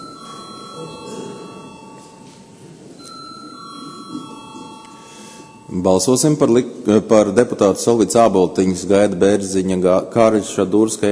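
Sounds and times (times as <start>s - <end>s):
electric bell ringing to call a vote in a parliamentary chamber: 0.0s - 2.4s, 3.0s - 6.4s
low murmur: 0.0s - 6.9s
speech: 5.7s - 11.1s.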